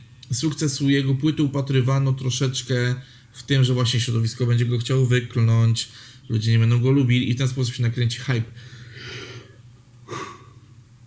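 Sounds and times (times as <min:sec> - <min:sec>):
speech: 0:00.3 - 0:09.2
person yawning: 0:09.0 - 0:10.6.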